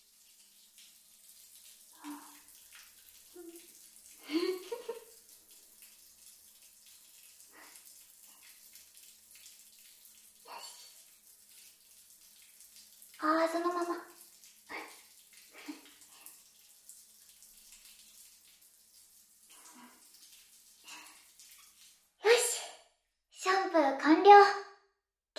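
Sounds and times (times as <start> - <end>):
running water rinsing soap foam off a surface: 0.0 - 22.4
speech: 24.0 - 24.6.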